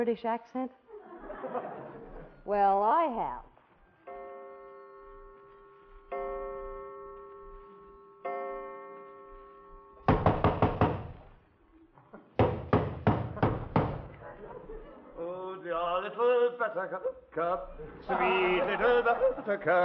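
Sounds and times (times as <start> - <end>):
speech: 0.0 - 0.8, 1.4 - 1.8, 2.4 - 3.5, 15.6 - 19.8
laughter: 0.9 - 2.4, 13.4 - 15.7, 16.7 - 19.8
sustained ringing tones: 4.0 - 10.1
loud pounding knocks on a door: 10.1 - 11.2, 12.4 - 14.2.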